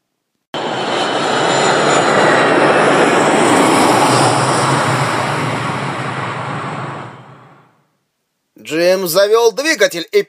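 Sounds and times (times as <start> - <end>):
enemy ground-attack aircraft sweeping overhead above open desert: 0.6 - 7.8
speech: 9.0 - 10.2.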